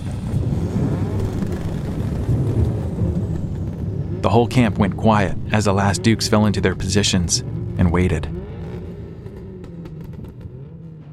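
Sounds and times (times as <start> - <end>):
motorcycle engines rumbling: 0.0 - 11.1
speech: 4.3 - 8.4.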